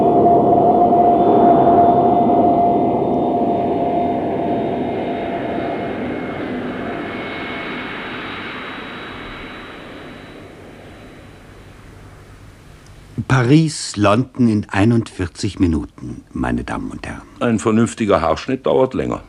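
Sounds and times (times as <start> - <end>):
jet aircraft engine roar while landing, heard from inside the cabin: 0.0 - 13.6
speech: 13.4 - 19.2.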